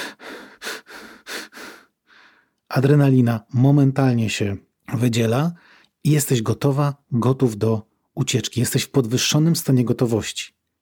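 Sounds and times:
rapid anxious breathing through the mouth: 0.0s - 2.6s
speech: 2.8s - 10.6s.

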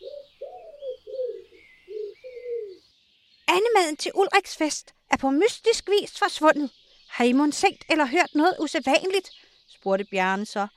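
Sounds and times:
dove cooing: 0.0s - 2.8s
faint birdsong twittering: 0.0s - 10.7s
speech: 3.7s - 10.7s.

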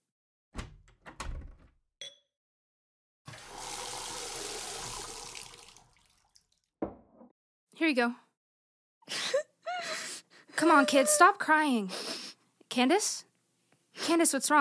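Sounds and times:
tap water pouring into a glass: 3.3s - 6.6s
thunk: 6.8s - 7.3s
speech: 7.8s - 8.2s, 10.6s - 12.1s, 12.7s - 13.3s, 14.1s - 14.5s.

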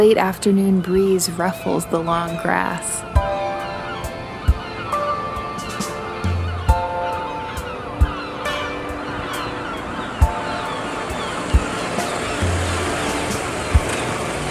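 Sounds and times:
speech: 0.0s - 3.4s
seagulls crying over ocean waves on beach: 0.1s - 14.4s
steady wash of ocean surf: 3.0s - 14.4s.

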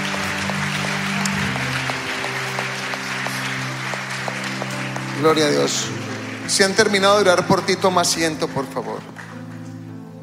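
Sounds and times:
sustained organ-like humming tone: 0.0s - 7.2s
church audience applause in an afternoon service: 0.0s - 9.9s
speech: 5.2s - 9.3s.

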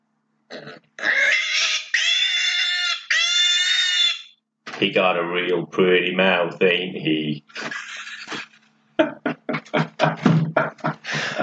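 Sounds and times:
speech: 0.5s - 0.9s, 4.8s - 7.8s
man imitating a pig with snorting grunt and high-pitched squeals: 0.5s - 4.3s, 7.5s - 9.5s
laughter: 7.5s - 11.4s.

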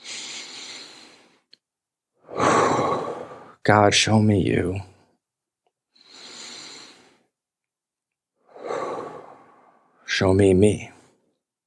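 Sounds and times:
group breathing together during a guided breath prayer: 0.0s - 1.6s, 2.2s - 3.6s, 5.9s - 7.3s, 8.4s - 10.0s
speech: 3.7s - 4.9s, 10.2s - 11.0s.

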